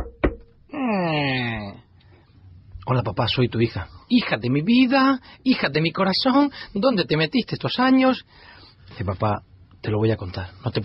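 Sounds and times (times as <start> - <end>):
knock on a door: 0.0 - 0.5
long falling moan-like vocal tone: 0.7 - 1.8
speech: 2.9 - 10.8.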